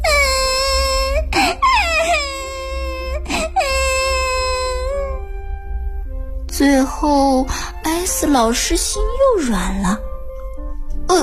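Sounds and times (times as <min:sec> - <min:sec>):
doll crying in a children's classroom story: 0:00.0 - 0:05.2
speech: 0:06.6 - 0:10.1.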